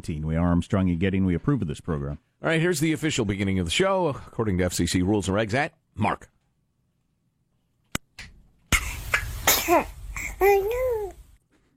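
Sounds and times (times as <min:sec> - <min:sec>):
speech: 0:00.0 - 0:06.4, 0:09.7 - 0:11.0
baby sneezing: 0:08.7 - 0:11.1.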